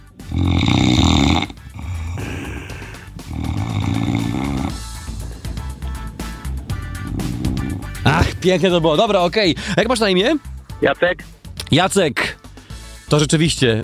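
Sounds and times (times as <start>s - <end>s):
man snoring loudly: 0.0s - 8.5s
speech: 0.3s - 0.7s, 8.4s - 12.4s, 13.1s - 13.8s.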